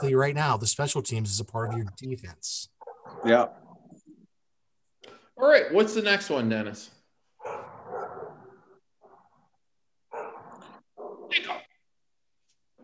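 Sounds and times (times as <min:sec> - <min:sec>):
speech: 0:00.0 - 0:03.6, 0:05.4 - 0:07.7
neighbor's dog barking: 0:02.8 - 0:03.4, 0:07.4 - 0:09.2, 0:10.1 - 0:11.5.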